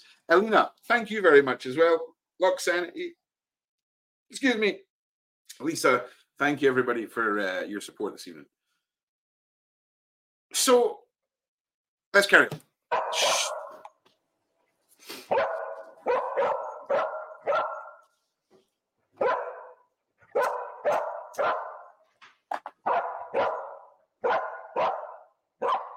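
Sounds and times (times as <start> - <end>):
speech: 0.3 - 3.2, 4.3 - 4.9, 5.5 - 8.6, 10.5 - 11.0, 12.1 - 13.5, 15.1 - 16.2
excited victim recovery dog barking in an apartment: 12.9 - 13.9, 15.3 - 18.1, 19.2 - 22.0, 22.8 - 25.9.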